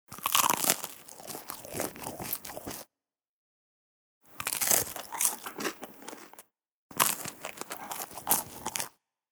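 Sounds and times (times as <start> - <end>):
person biting and munching toast: 0.1 - 2.8, 4.4 - 9.0.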